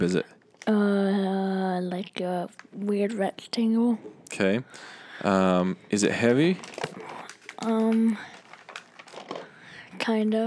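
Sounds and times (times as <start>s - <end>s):
speech: 0.0s - 8.3s, 10.0s - 10.4s
wrapping paper crinkling on a heavy rectangular gift: 6.1s - 9.6s.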